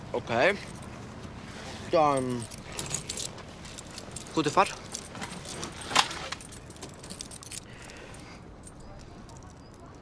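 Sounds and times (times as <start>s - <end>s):
speech: 0.1s - 0.8s, 1.9s - 2.9s, 4.4s - 4.8s
keys jangling: 2.0s - 10.0s.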